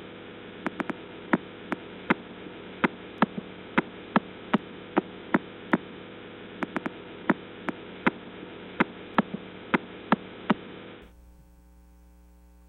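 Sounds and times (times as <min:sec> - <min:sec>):
constant hiss: 0:00.0 - 0:12.6
low hum: 0:00.0 - 0:12.6
pulsar 0329+54 radio signal converted to sound clicks: 0:00.6 - 0:05.9, 0:06.6 - 0:10.7.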